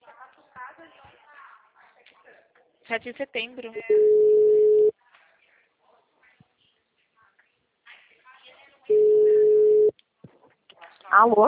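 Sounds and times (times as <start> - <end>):
faint scattered noise: 0.0 - 11.4
speech: 2.9 - 4.4, 11.2 - 11.4
telephone busy tone after a dropped call: 3.9 - 4.9, 8.9 - 9.9.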